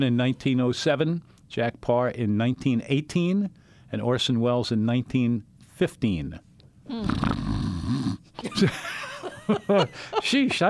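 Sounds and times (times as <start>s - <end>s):
speech: 0.0s - 7.6s, 8.6s - 8.9s, 9.5s - 10.6s
person snoring: 6.9s - 8.2s
laughter: 8.4s - 10.6s.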